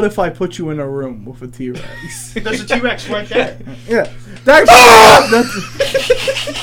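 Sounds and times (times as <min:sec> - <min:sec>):
speech: 0:00.0 - 0:06.6
laughter: 0:01.8 - 0:04.1, 0:04.7 - 0:06.6
piercing human scream distorting the microphones: 0:04.5 - 0:05.6.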